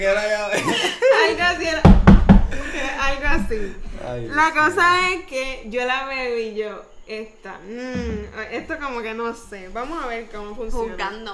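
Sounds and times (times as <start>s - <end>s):
laughter: 0.5s - 1.6s, 8.0s - 8.8s
loud quick knocks on a door: 1.8s - 2.5s
speech: 3.5s - 11.3s.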